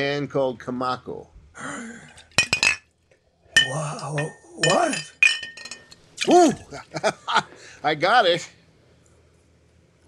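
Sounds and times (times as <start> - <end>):
speech: 0.0 - 2.1, 3.7 - 5.2, 6.3 - 8.6
faint noise: 0.0 - 10.0
glass bottle clinking: 2.3 - 2.9, 3.6 - 6.0.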